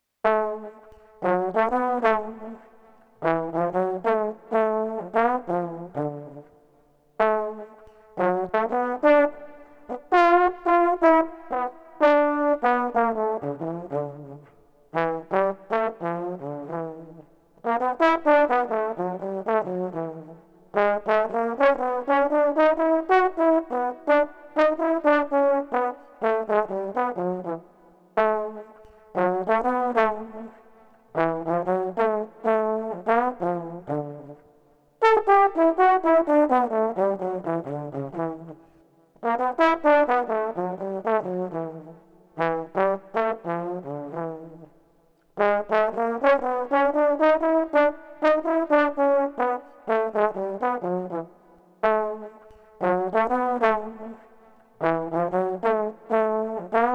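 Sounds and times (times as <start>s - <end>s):
trombone: 0.2s - 6.5s, 7.2s - 34.4s, 35.0s - 44.7s, 45.4s - 56.9s.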